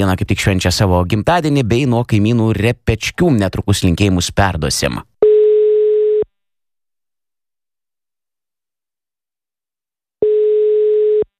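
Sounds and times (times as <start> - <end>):
speech: 0.0 - 5.1
telephone line tone while a call is being placed: 5.2 - 6.3, 10.2 - 11.3.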